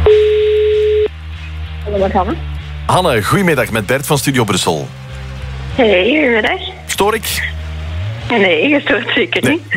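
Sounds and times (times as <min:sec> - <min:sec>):
telephone ringing tone as a radio host calls a listener: 0:00.1 - 0:01.1
speech: 0:02.1 - 0:05.1, 0:05.8 - 0:07.6, 0:08.3 - 0:09.7.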